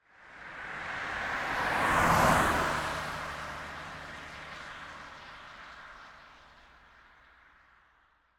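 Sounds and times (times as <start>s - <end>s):
car passing by on wet asphalt at medium speed: 0.2s - 7.8s.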